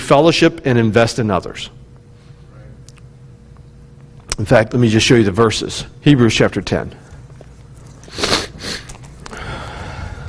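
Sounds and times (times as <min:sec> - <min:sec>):
speech: 0:00.1 - 0:01.8, 0:04.4 - 0:07.0
person sniffing with a stuffy nose from a cold: 0:08.0 - 0:10.2.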